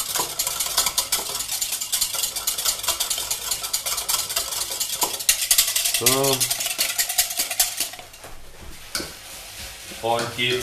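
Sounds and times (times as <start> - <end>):
small whisk stirring vegetable broth powder in a measuring jug: 0.0 - 8.2
speech: 6.0 - 6.6, 10.0 - 10.6.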